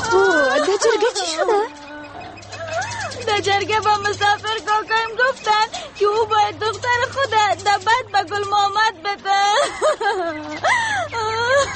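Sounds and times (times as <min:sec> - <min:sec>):
person in distress wailing and sobbing: 0:00.0 - 0:03.5, 0:09.2 - 0:11.7
laughter: 0:00.0 - 0:11.7
speech: 0:03.4 - 0:11.7.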